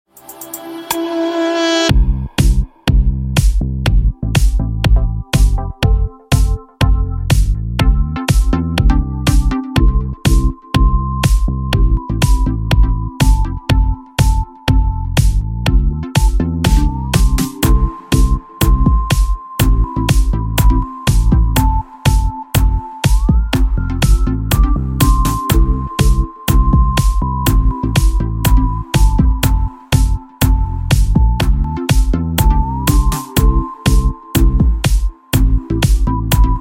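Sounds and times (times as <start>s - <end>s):
disco music track: 1.9s - 36.5s.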